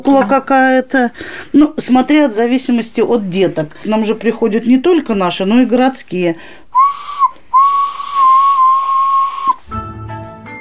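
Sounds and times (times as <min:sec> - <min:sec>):
speech: 0:00.0 - 0:06.6
clay whistle being blown: 0:06.7 - 0:09.7.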